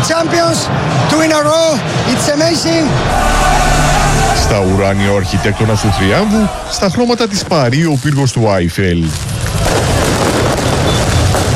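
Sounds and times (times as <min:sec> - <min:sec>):
speech: 0:00.1 - 0:09.6
fireworks at a street celebration of a championship win in Paris: 0:06.5 - 0:11.5.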